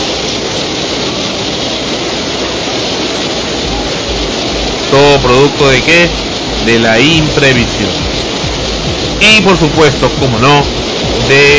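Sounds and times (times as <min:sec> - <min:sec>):
rushing river water carrying debris: 0:00.0 - 0:11.5
speech: 0:04.9 - 0:08.1, 0:09.2 - 0:11.5.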